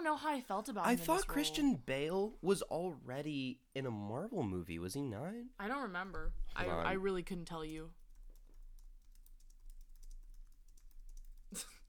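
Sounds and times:
speech: 0.0 - 8.0, 11.5 - 11.7
fingers typing on a computer keyboard: 7.5 - 11.8.

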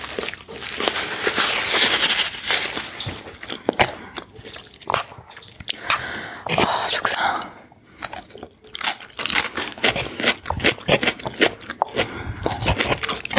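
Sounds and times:
crisp crunching and wet chewing of Chinese food: 0.0 - 13.3
soft mouth sounds: 3.2 - 8.7, 9.7 - 13.3.

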